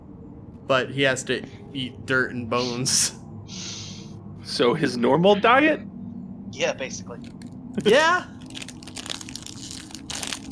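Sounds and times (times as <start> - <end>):
speech: 0.7 - 3.8, 4.5 - 5.9, 6.5 - 8.3
crisp snack being opened and crushed: 7.2 - 10.5.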